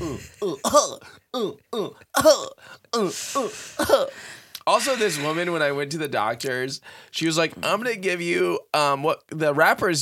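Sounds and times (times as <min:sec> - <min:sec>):
person coughing throatily: 0:00.0 - 0:04.2
speech: 0:00.4 - 0:09.9.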